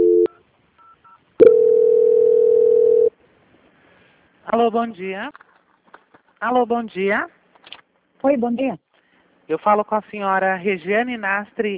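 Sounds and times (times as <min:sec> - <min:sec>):
telephone tones while a call is transferred: 0:00.0 - 0:03.1
speech: 0:04.5 - 0:05.5, 0:06.4 - 0:07.4, 0:08.2 - 0:08.8, 0:09.5 - 0:11.7.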